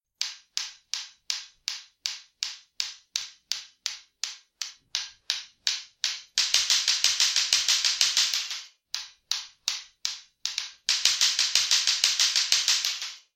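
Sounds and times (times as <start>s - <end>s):
click clack: 3.2s - 13.3s.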